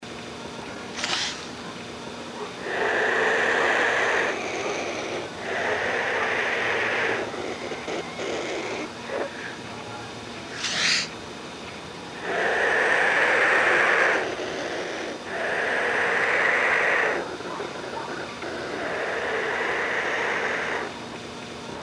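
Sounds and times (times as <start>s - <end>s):
Coragyps atratus black vulture calling: 2.5s - 9.6s, 10.5s - 11.2s, 12.2s - 21.0s.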